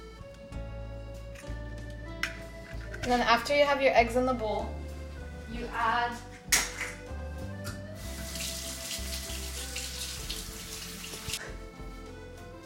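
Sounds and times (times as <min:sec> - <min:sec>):
speech: 0:03.1 - 0:04.8, 0:05.5 - 0:06.3
water running from a tap while hands are washed: 0:08.0 - 0:11.4.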